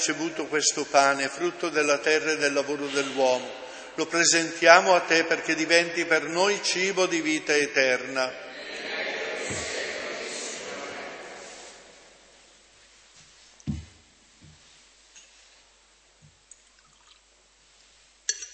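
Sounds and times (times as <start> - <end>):
speech: 0.0 - 8.5, 9.5 - 9.7
water pouring into wine in a chalice: 16.5 - 17.2
metal clinks and taps: 18.3 - 18.5.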